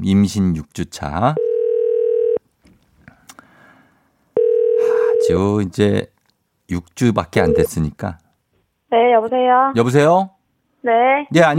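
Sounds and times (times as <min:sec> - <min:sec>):
speech: 0:00.0 - 0:01.5, 0:05.3 - 0:06.1, 0:06.7 - 0:08.2, 0:08.9 - 0:11.5
telephone ringing tone as a call is placed: 0:01.4 - 0:02.4, 0:04.4 - 0:05.3, 0:07.4 - 0:07.7.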